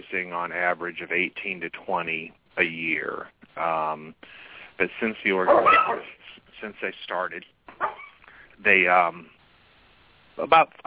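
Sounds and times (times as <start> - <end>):
speech: 0.1 - 8.0, 8.6 - 9.4, 10.4 - 10.8
dogs whimpering and yipping faintly: 7.7 - 8.2.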